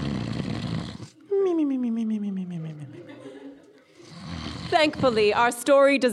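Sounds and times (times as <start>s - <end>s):
voice imitating the loud snore of a sleeping wolf: 0.0s - 2.9s, 4.0s - 5.5s
laughter: 1.4s - 4.1s
speech: 4.7s - 6.1s.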